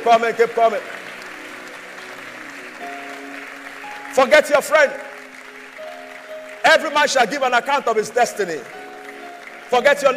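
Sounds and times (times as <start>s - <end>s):
speech: 0.0s - 1.0s, 4.1s - 5.1s, 6.6s - 8.8s, 9.7s - 10.1s
crowd clapping in a large room: 0.0s - 10.1s
sustained musical tones: 0.8s - 10.1s.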